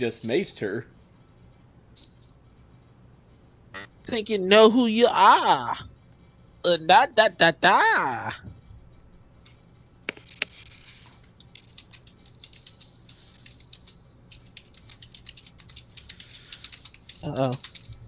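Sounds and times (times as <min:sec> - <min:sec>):
speech: 0:00.0 - 0:01.0, 0:04.0 - 0:05.9, 0:06.6 - 0:08.6, 0:17.2 - 0:17.7
fast typing on a computer keyboard: 0:10.2 - 0:18.0.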